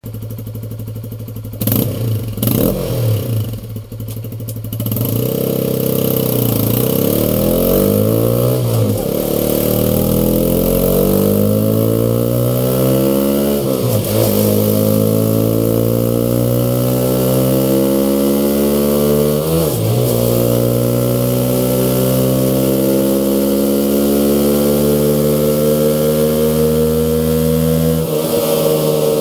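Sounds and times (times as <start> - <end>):
Honda CBR 125 motorcycle engine: 0.0 - 29.2.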